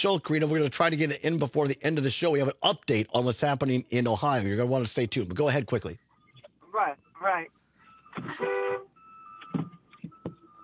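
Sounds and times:
speech: 0:00.0 - 0:06.0, 0:06.8 - 0:07.6, 0:08.2 - 0:08.8
thin electronic beep: 0:06.1 - 0:10.6
car horn blare: 0:08.2 - 0:09.0.

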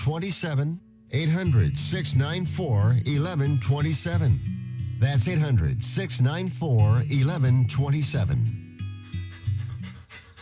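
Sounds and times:
speech: 0:00.0 - 0:08.6
dog panting in quick rhythmic breaths: 0:09.0 - 0:10.3.

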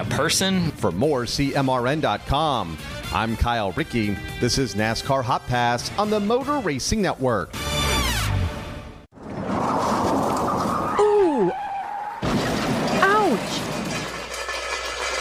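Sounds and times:
speech: 0:00.0 - 0:07.7
car tires skidding in a crash: 0:09.3 - 0:15.1.

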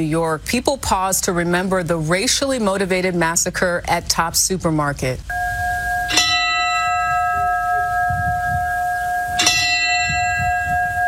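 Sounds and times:
speech: 0:00.0 - 0:05.4
church bell strikes: 0:05.3 - 0:11.0.

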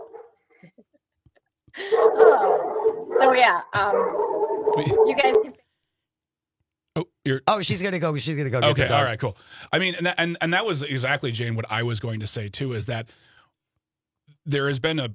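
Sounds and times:
dog barking and yipping: 0:00.0 - 0:00.4, 0:01.8 - 0:05.4
speech: 0:03.2 - 0:05.6, 0:07.0 - 0:13.3, 0:14.4 - 0:15.1.

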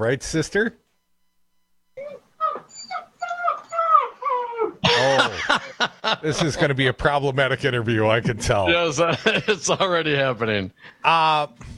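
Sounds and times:
speech: 0:00.0 - 0:00.8, 0:05.3 - 0:11.7
dog whimpering and whining in high-pitched wavering cries: 0:02.0 - 0:04.8
laughter: 0:04.8 - 0:06.9, 0:09.0 - 0:10.2.

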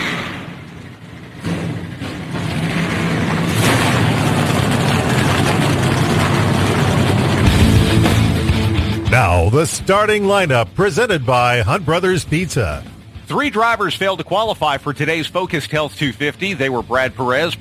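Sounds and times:
race car engines starting and revving at a race track in Austin Texas: 0:00.0 - 0:17.6
speech: 0:09.4 - 0:17.6.

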